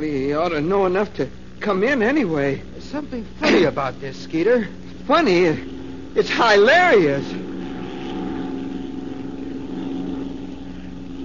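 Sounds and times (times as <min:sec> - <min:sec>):
speech: 0:00.0 - 0:07.4
propeller plane droning overhead: 0:00.0 - 0:11.2.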